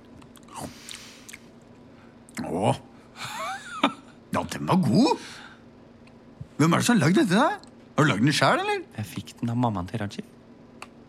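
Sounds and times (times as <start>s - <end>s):
soft wet chewing and mouth sounds while tasting tahini: 0.0s - 1.5s
brief lip smacks: 0.2s - 1.5s
speech: 0.6s - 0.9s, 2.4s - 2.9s, 4.6s - 5.3s, 6.6s - 10.4s.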